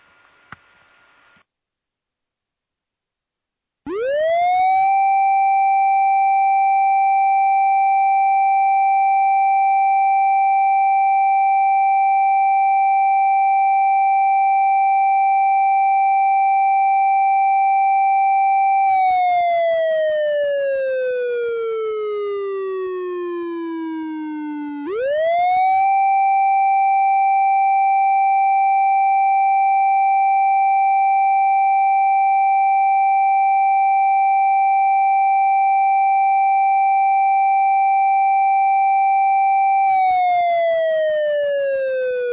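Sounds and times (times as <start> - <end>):
faint noise burst: 0.0 - 1.5
outdoor siren wailing for fire brigade ceremony in Japan: 3.9 - 42.3.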